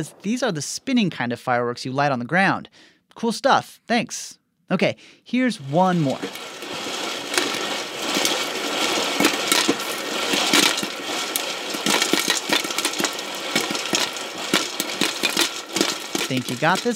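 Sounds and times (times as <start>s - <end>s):
speech: 0.0s - 6.6s, 16.3s - 16.9s
stovetop popcorn maker spinning kernels: 5.6s - 16.9s.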